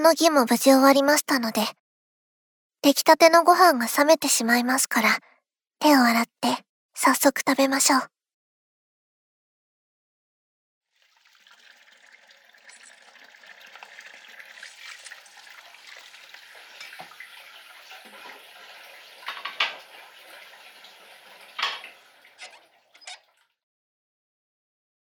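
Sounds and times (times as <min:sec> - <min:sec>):
speech: 0:00.0 - 0:01.8, 0:02.8 - 0:08.1
running tap water while dishes are washed at home: 0:10.9 - 0:23.5
dishes knocking while being washed: 0:21.6 - 0:21.9.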